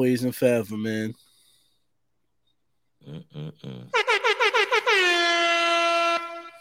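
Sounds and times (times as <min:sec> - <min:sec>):
speech: 0:00.0 - 0:01.2, 0:03.0 - 0:04.1
loud air horn blasts: 0:04.0 - 0:06.5
lower honking bursts: 0:04.0 - 0:06.5.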